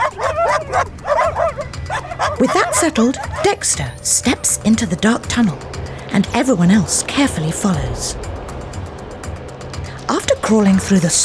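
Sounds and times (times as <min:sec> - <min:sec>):
dog barking and yipping: 0:00.0 - 0:04.2
speech: 0:02.4 - 0:08.3, 0:10.4 - 0:11.2.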